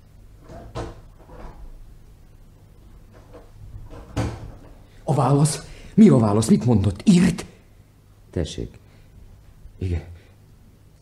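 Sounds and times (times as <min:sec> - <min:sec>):
wooden door opening and closing: 0:00.4 - 0:01.8, 0:03.1 - 0:04.8
speech: 0:05.1 - 0:07.5, 0:08.4 - 0:08.8, 0:09.8 - 0:10.1.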